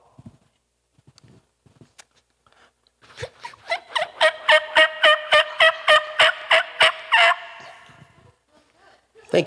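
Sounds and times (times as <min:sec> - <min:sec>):
person imitating a female turkey call: 0:03.2 - 0:08.0.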